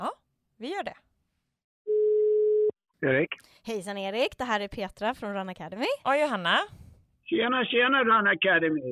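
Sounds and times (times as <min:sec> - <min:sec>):
speech: 0:00.0 - 0:01.1, 0:03.0 - 0:08.9
phone call ringback tone: 0:01.9 - 0:02.7.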